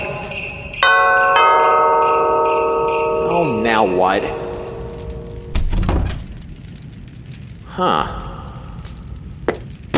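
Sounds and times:
sleigh bells jingling: 0:00.0 - 0:05.6
speech: 0:03.8 - 0:04.4, 0:07.8 - 0:08.2.

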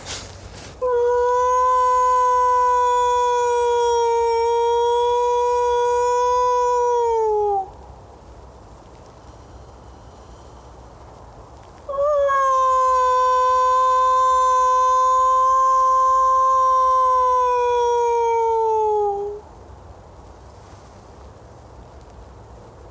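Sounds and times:
person imitating a wolf howl: 0:00.8 - 0:07.8, 0:11.9 - 0:19.4.

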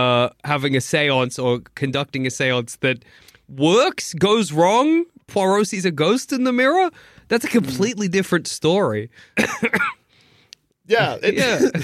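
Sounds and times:
speech: 0:00.0 - 0:10.0, 0:10.9 - 0:11.8
person coughing roughly: 0:09.4 - 0:10.1, 0:11.3 - 0:11.8.

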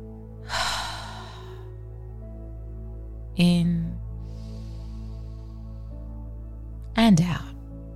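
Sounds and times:
deep breath in through nose and out through mouth: 0:00.4 - 0:01.7, 0:04.2 - 0:06.1
speech: 0:03.4 - 0:04.0, 0:07.1 - 0:07.5.

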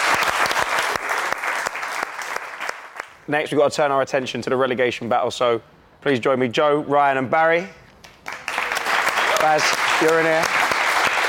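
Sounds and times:
live audience clapping: 0:00.0 - 0:03.2, 0:08.0 - 0:11.2
speech: 0:03.3 - 0:07.8, 0:09.4 - 0:10.6.

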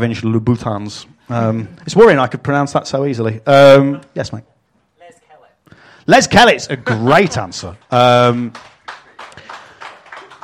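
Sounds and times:
speech: 0:00.0 - 0:04.5, 0:06.1 - 0:08.7
sparse polite applause from a small audience: 0:06.7 - 0:10.4.

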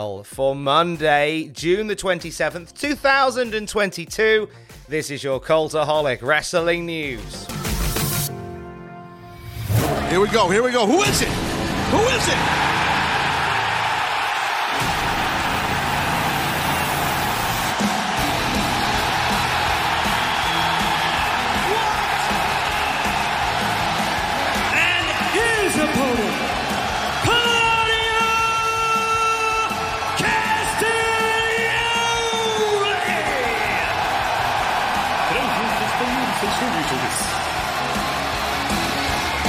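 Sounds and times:
speech: 0:00.0 - 0:07.6, 0:10.1 - 0:12.9
huge arena crowd at a wrestling event roaring and cheering: 0:09.4 - 0:39.4.

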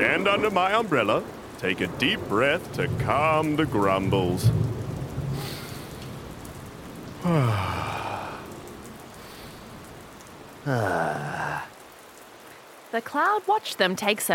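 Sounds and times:
speech: 0:00.0 - 0:04.8, 0:07.2 - 0:07.9, 0:10.6 - 0:11.5, 0:12.9 - 0:14.3
rain falling: 0:00.0 - 0:14.3.

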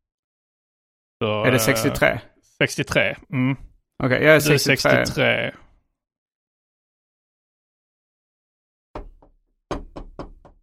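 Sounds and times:
speech: 0:01.2 - 0:05.6
knocking on a door: 0:09.0 - 0:10.6.

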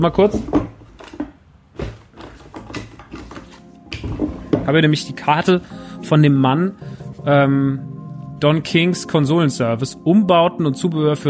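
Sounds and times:
speech: 0:00.0 - 0:00.6, 0:04.7 - 0:11.2
items shuffled and clattered in a desk drawer: 0:00.1 - 0:04.8.

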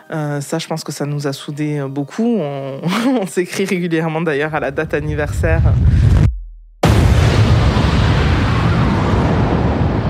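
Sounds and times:
speech: 0:00.1 - 0:06.2
rumble: 0:04.6 - 0:10.0
huge explosion at a petrochemical plant: 0:04.8 - 0:10.0.

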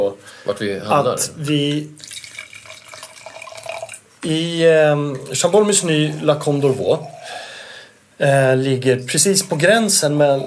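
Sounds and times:
speech: 0:00.0 - 0:02.1, 0:04.2 - 0:07.4, 0:08.2 - 0:10.4
wine pouring into a glass: 0:02.0 - 0:04.2, 0:04.9 - 0:07.4, 0:09.4 - 0:10.4.

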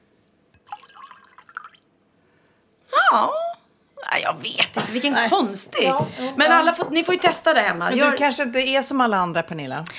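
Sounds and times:
warm water pouring: 0:00.6 - 0:01.9
speech: 0:03.1 - 0:03.4, 0:04.3 - 0:09.9.

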